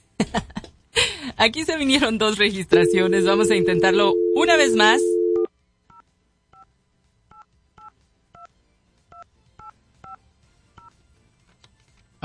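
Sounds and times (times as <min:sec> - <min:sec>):
speech: 0:01.4 - 0:05.1
telephone keypad tones as a number is dialed: 0:02.8 - 0:05.5.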